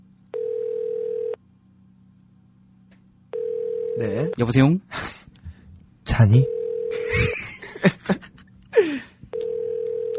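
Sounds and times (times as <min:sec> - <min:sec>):
low hum: 0:00.0 - 0:10.1
electronic telephone ringback tone while call connects: 0:00.3 - 0:01.4, 0:03.3 - 0:04.3, 0:06.4 - 0:07.1, 0:09.3 - 0:10.1
speech: 0:04.0 - 0:05.2, 0:06.2 - 0:06.6
person gasping or laughing: 0:08.7 - 0:09.2.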